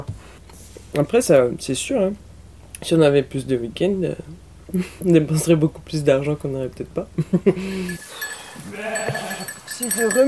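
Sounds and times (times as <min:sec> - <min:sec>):
speech: 0:01.0 - 0:02.2, 0:02.8 - 0:10.2
laughter: 0:07.2 - 0:08.0
faint farmyard noise: 0:07.8 - 0:10.2
sheep bleating on an organic farm: 0:08.2 - 0:09.8.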